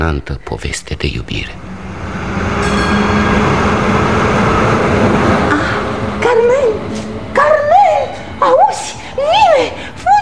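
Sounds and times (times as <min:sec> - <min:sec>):
speech: 0:00.0 - 0:01.7
passing train from Arica: 0:01.0 - 0:10.1.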